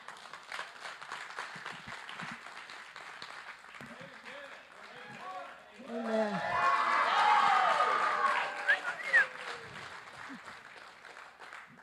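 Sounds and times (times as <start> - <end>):
large audience applauding: 0.0 - 11.8
crowd cheering and shouting: 5.8 - 9.6.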